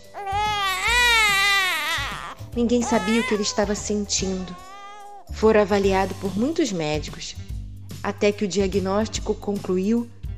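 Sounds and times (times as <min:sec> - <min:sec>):
baby crying: 0:00.0 - 0:05.2
speech: 0:02.6 - 0:04.7, 0:05.4 - 0:07.4, 0:08.0 - 0:10.2.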